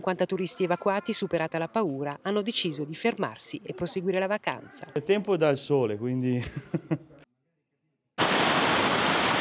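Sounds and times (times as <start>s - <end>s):
speech: 0.0s - 7.1s
river water churning over debris: 8.2s - 9.4s.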